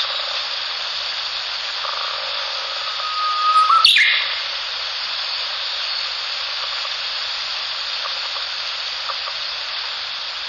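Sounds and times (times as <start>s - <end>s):
constant hiss: 0.0s - 10.4s
Japanese bush warbler whistled song with a quick higher flourish: 2.2s - 4.6s.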